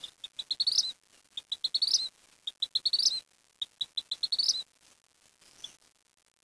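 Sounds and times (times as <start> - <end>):
bird giving high sharp chirps ending in a rising twitter: 0.0 - 4.6.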